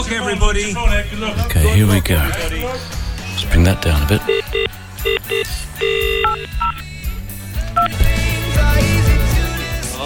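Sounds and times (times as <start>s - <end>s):
speech: 0.1s - 6.9s
steady musical backing: 0.6s - 10.0s
telephone keypad tones dialing a call: 4.2s - 6.9s.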